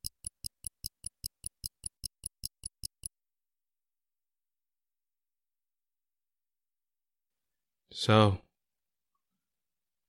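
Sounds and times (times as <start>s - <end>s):
watch ticking: 0.0s - 3.1s
speech: 8.0s - 8.4s.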